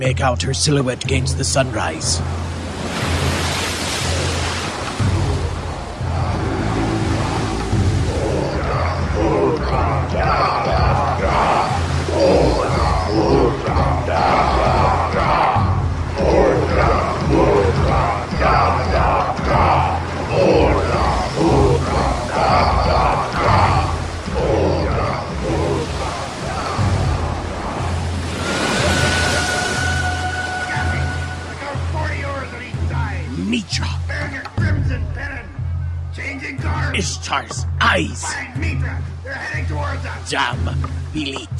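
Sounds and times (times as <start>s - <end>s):
speech: 0.0s - 2.5s
constant rushing background: 0.0s - 41.5s
many warriors shouting and chanting together: 3.4s - 41.5s
loud dense crowd roar: 8.2s - 31.9s.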